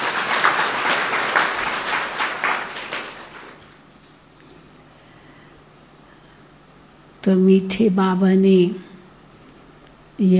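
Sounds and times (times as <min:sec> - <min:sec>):
audience applauding for themselves: 0:00.0 - 0:03.8
speech: 0:07.3 - 0:08.9, 0:10.2 - 0:10.3.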